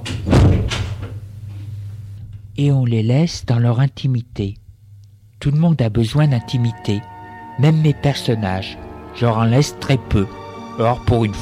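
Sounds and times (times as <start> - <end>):
bedroom door swinging shut with a heavy thud: 0.0 - 1.2
bedroom door knocking lightly as it settles into the frame: 0.1 - 1.0
speech: 2.6 - 4.6, 5.4 - 11.4.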